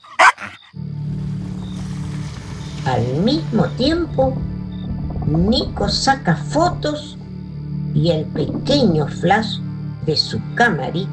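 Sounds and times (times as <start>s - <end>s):
dog barking furiously in an attack stance: 0.0s - 0.7s
low, steady rumbling drone: 0.8s - 11.1s
speech: 2.8s - 4.5s, 5.3s - 7.2s, 8.0s - 11.1s.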